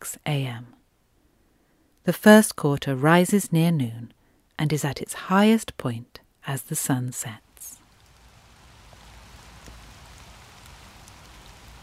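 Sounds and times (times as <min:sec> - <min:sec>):
speech: 0:00.2 - 0:00.8, 0:02.0 - 0:07.4
steady rain falling: 0:07.5 - 0:11.8
droplets pattering on a surface: 0:07.7 - 0:11.8.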